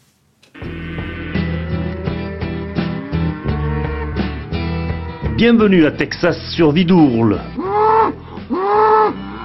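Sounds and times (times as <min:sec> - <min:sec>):
Texas Longhorn cattle mooing: 0:00.6 - 0:05.6, 0:07.4 - 0:09.4
speech: 0:05.4 - 0:07.6.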